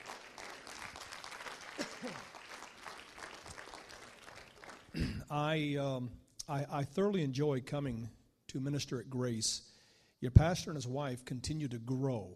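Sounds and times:
congregation clapping: 0.0s - 5.2s
speech: 5.3s - 12.3s.

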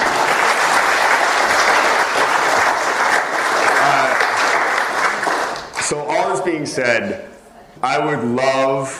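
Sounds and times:
crowd applauding: 0.0s - 6.4s
speech: 5.9s - 8.9s.

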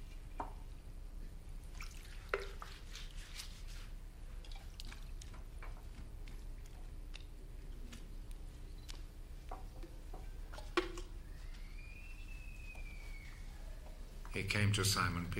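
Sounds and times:
low hum: 0.0s - 15.3s
water poured into basin while washing feet: 1.7s - 3.1s, 4.4s - 5.5s
speech: 14.4s - 15.3s.

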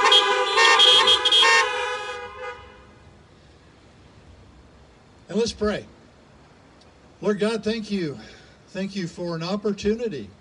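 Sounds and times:
several car horns honking: 0.0s - 3.0s
speech: 5.4s - 6.0s, 7.2s - 10.3s.

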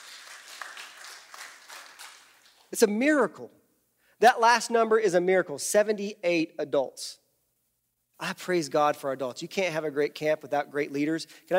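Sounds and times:
audience in a church applauding: 0.0s - 2.7s
speech: 2.7s - 3.6s, 4.2s - 7.2s, 8.2s - 11.5s.

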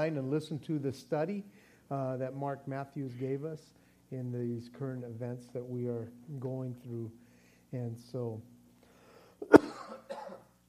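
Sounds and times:
speech: 0.0s - 8.5s
person with a lingering cough coughing: 9.4s - 10.6s.

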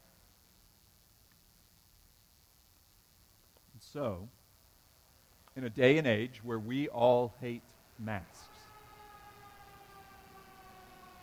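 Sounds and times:
speech: 3.8s - 4.4s, 5.6s - 8.6s
emergency vehicle sirens wailing: 8.2s - 11.2s.

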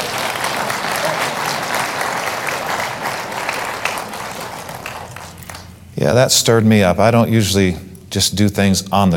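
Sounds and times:
audience applause: 0.0s - 5.7s
speech: 6.0s - 9.1s.

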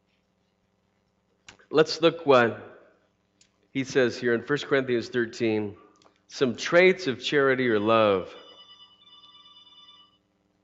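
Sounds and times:
speech: 1.7s - 2.7s, 3.7s - 8.4s
mobile phone ringing: 7.7s - 10.3s.

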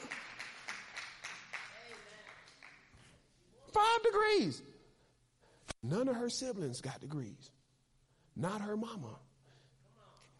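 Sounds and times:
audience clapping in a steady rhythmic beat: 0.0s - 3.1s
speech: 3.8s - 4.7s, 5.9s - 7.6s, 8.4s - 9.3s.

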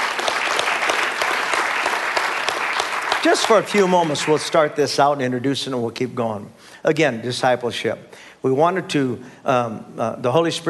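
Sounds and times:
room full of people clapping: 0.0s - 4.7s
speech: 3.2s - 10.6s.

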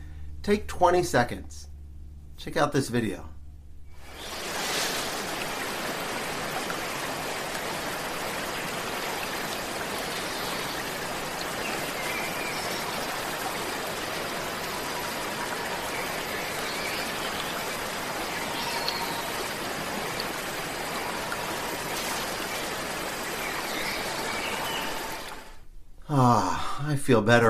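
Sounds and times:
speech: 0.4s - 1.7s, 2.4s - 3.3s, 26.9s - 27.4s
waterfall rushing: 4.0s - 25.5s.

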